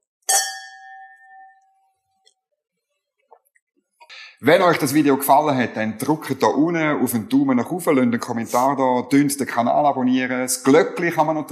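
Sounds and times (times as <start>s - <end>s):
glasses clinking in a toast: 0.3s - 1.9s
speech: 4.4s - 11.4s.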